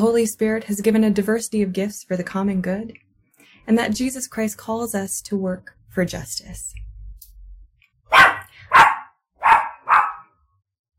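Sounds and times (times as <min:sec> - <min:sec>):
speech: 0:00.0 - 0:03.0, 0:03.6 - 0:06.8
small dog barking in sharp yaps: 0:08.1 - 0:10.3.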